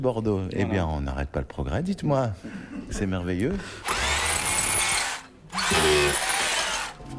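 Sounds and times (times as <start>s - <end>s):
speech: 0.0s - 4.0s
motorized screwdriver whirring as it turns a screw: 3.8s - 7.0s.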